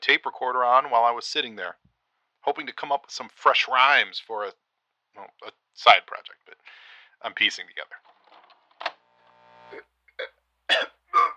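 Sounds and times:
speech: 0.1s - 4.6s, 5.2s - 8.1s
person coughing: 10.7s - 11.3s.

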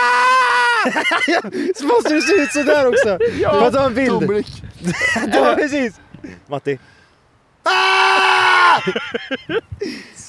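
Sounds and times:
long strained human scream: 0.0s - 0.9s, 7.6s - 9.0s
laughter: 0.8s - 5.7s, 8.5s - 9.9s
speech: 0.8s - 7.0s, 7.6s - 8.0s, 8.6s - 10.2s.

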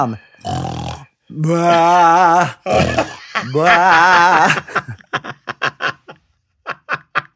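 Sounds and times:
speech: 0.0s - 0.7s, 1.3s - 5.0s
voice imitating a father's loud drawn-out snoring: 0.4s - 3.2s
voice imitating deep bellowing rutting-deer calls: 0.6s - 4.6s
laughter: 1.4s - 7.3s.

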